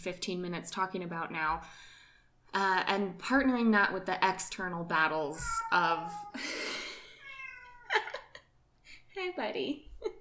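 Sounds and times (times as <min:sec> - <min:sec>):
speech: 0:00.0 - 0:06.8, 0:09.2 - 0:10.1
cat meowing with wavering cry: 0:05.4 - 0:06.4, 0:07.1 - 0:08.1.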